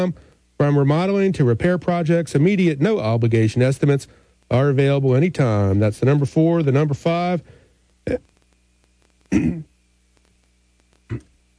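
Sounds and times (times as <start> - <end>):
speech: 0.0 - 8.3, 9.3 - 9.7, 11.1 - 11.5
rough coughs: 9.3 - 9.7, 11.1 - 11.5.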